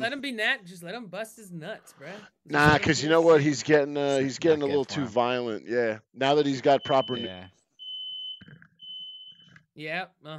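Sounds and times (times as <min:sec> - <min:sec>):
speech: 0:00.0 - 0:07.6, 0:09.8 - 0:10.3
smoke alarm beeping with high-pitched tone: 0:06.6 - 0:09.5.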